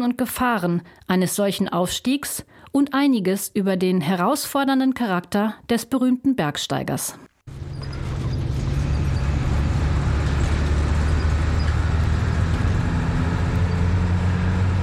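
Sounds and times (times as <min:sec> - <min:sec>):
speech: 0:00.0 - 0:07.3
bus engine labouring up serpentine mountain roads between Kathmandu and Pokhara: 0:07.5 - 0:14.8.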